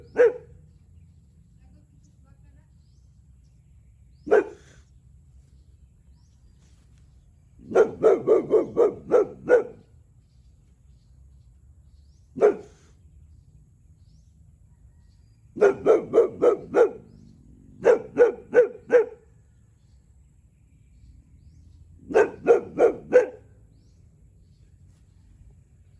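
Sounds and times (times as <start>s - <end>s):
Boxer dog barking: 0.0s - 0.6s, 4.2s - 4.8s, 7.6s - 9.9s, 12.4s - 12.9s, 15.6s - 17.2s, 17.8s - 19.3s, 22.0s - 23.5s.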